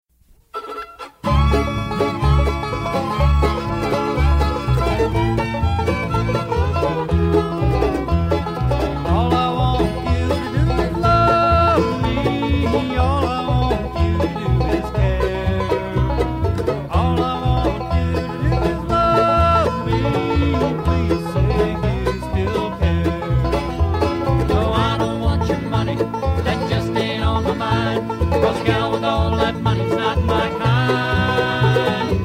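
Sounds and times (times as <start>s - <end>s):
fiddles playing: 0.5s - 32.2s
person singing lead vocal: 9.0s - 16.1s, 16.8s - 23.4s, 24.4s - 32.2s.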